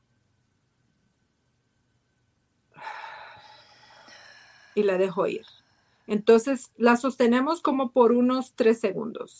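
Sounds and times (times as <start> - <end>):
deep breath drawn in during a breathing exercise: 2.8 - 6.1
speech: 4.8 - 9.3.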